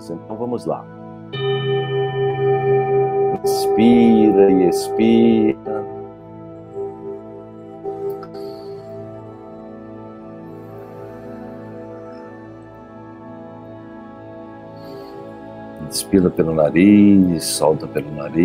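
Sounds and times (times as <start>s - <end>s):
speech: 0.1s - 2.5s, 3.4s - 6.0s, 16.0s - 18.4s
meditation bell ringing: 1.3s - 13.8s.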